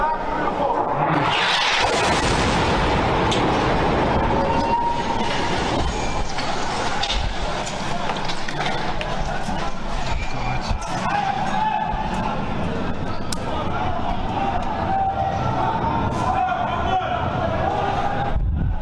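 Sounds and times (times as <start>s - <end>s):
roaring crackling rumble: 0.1s - 16.2s, 17.4s - 18.7s
massive explosion at a hospital: 0.8s - 7.6s.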